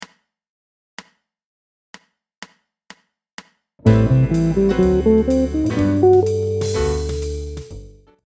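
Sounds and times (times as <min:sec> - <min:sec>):
guitar playing major ii V I outlines: 0:03.8 - 0:07.7.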